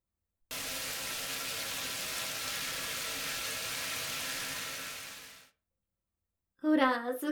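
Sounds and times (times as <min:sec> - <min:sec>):
shower water spraying hard into a filled tub: 0:00.5 - 0:05.5
speech: 0:06.8 - 0:07.3.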